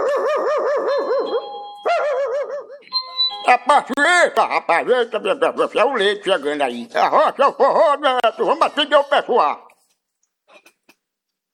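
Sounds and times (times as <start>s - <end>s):
dog barking in high-pitched yaps: 0.0s - 2.8s
speech: 3.5s - 9.7s.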